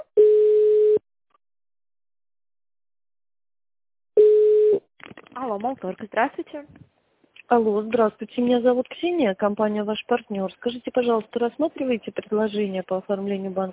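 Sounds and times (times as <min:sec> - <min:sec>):
single-pitch telephone tone while a call is transferred: 0:00.2 - 0:01.0, 0:04.2 - 0:04.8
speech: 0:05.6 - 0:13.7.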